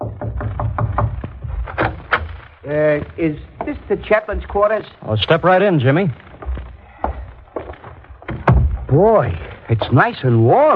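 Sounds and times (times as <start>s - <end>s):
hollow knocks on a wooden door: 0.0s - 2.1s, 8.2s - 9.0s
speech: 2.7s - 6.2s, 8.9s - 10.7s.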